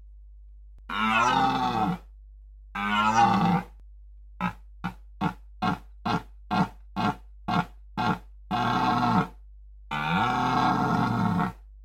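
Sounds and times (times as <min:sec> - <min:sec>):
male red deer stag bellowing in the rutting season: 0:00.9 - 0:02.0, 0:02.8 - 0:03.7, 0:04.4 - 0:11.6.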